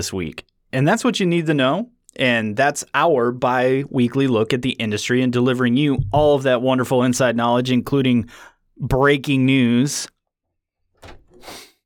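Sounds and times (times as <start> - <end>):
speech: 0.0 - 10.1
door opening with rattling creak and scrape: 10.9 - 11.5.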